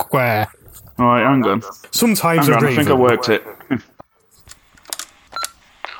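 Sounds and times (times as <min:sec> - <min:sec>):
speech: 0:00.1 - 0:03.9
telephone keypad button beeps and clicks: 0:05.3 - 0:05.6.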